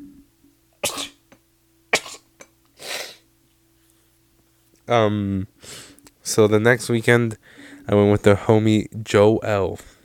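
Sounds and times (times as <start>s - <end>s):
faint steady hum: 0.0s - 10.0s
person sneezing: 0.8s - 1.2s, 1.9s - 3.2s
speech: 4.9s - 10.0s
breathy exhale: 5.6s - 6.0s, 7.4s - 7.9s.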